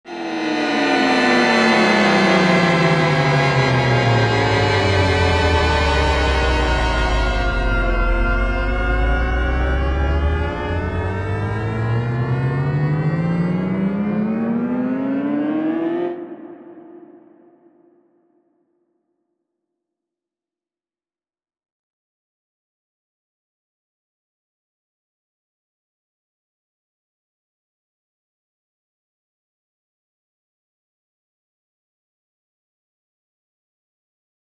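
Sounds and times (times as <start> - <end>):
MIDI viola glide: 0.1 - 17.6.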